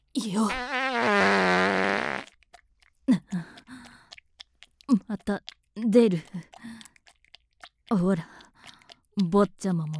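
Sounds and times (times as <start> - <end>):
speech: 0.2 - 0.8, 5.3 - 6.4, 8.0 - 8.3, 9.2 - 9.9
loud drawn-out buzzy fart: 0.5 - 2.3.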